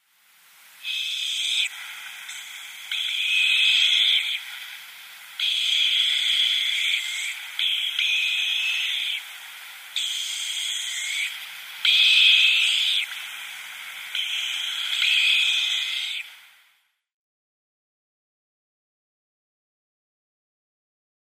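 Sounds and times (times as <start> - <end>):
downy short-eared owl young making hissing wheezes: 0.8 - 16.3.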